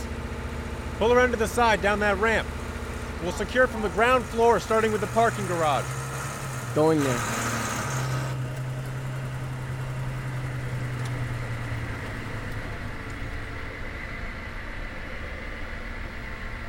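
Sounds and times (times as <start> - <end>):
vehicle engine idling: 0.0 - 16.6
speech: 1.0 - 2.6, 3.2 - 6.0, 6.8 - 7.4.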